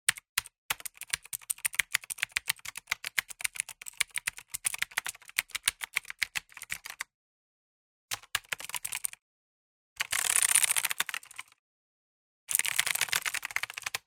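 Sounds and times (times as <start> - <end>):
keyboard typing: 0.1 - 7.0, 8.1 - 9.2, 10.0 - 11.5, 12.5 - 14.0.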